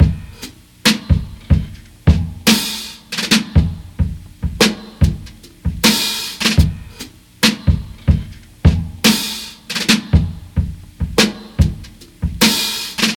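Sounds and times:
kick drum tuned to C sharp: 0.0s - 0.3s, 1.1s - 2.4s, 3.6s - 5.9s, 6.6s - 6.9s, 7.7s - 9.0s, 10.2s - 12.4s
drum loop in C sharp at 73 bpm: 0.0s - 13.1s.

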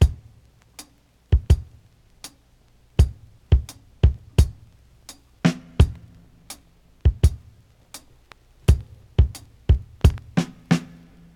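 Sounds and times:
dance drum beat in C sharp key: 0.0s - 0.4s, 1.4s - 1.8s, 3.0s - 4.7s, 5.5s - 6.2s, 7.1s - 7.6s, 8.7s - 10.9s.

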